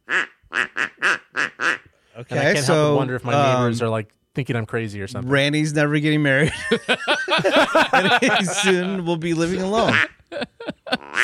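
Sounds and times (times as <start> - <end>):
duck call blown by a person at home: 0.0 - 1.9, 11.0 - 11.2
speech: 2.3 - 10.2
laughter: 6.4 - 11.2.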